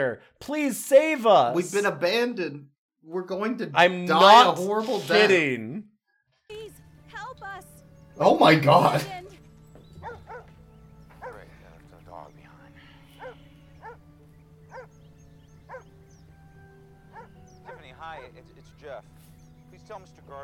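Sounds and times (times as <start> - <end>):
speech: 0.0 - 5.9, 8.2 - 9.2, 19.9 - 20.4
dog left at a vacated house barking: 10.0 - 11.5, 13.2 - 14.0, 14.7 - 14.9, 15.7 - 15.9, 17.1 - 18.2.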